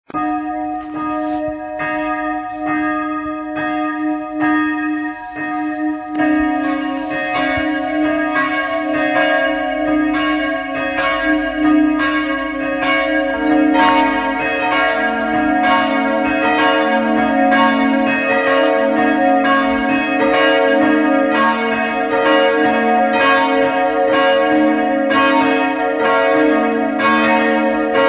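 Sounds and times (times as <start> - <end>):
multi-voice peal of bells tuned A sharp, C sharp and D sharp: 0.1 - 28.0.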